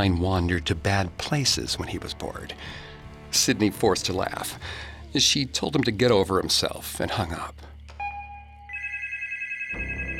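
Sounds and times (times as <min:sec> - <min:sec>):
speech: 0:00.0 - 0:07.7
telephone ringing with electronic tones: 0:08.0 - 0:10.1.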